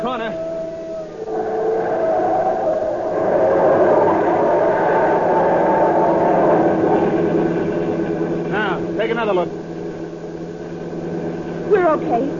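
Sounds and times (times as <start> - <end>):
police siren wailing during a car chase: 0.0 - 7.8
car engine roar and road noise during a car chase: 2.8 - 12.3.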